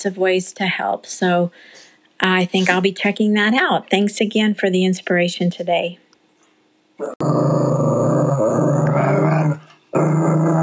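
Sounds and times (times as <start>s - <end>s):
speech: 0.0s - 6.0s, 7.0s - 7.8s
female puppy growling: 7.0s - 10.6s.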